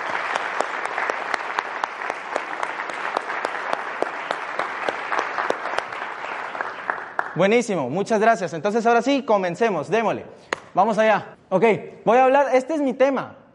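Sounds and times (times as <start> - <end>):
audience applause: 0.0 - 7.4
speech: 7.4 - 13.4.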